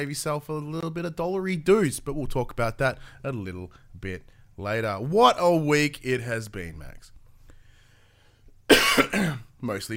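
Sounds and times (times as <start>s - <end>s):
speech: 0.0s - 7.2s, 8.7s - 9.9s
harsh loud cough from a person with COVID: 8.7s - 9.5s.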